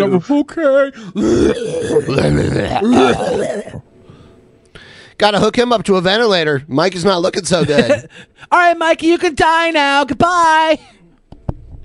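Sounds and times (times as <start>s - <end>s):
speech: 0.0s - 3.9s, 5.2s - 11.0s
person imitating a cough: 1.2s - 3.8s.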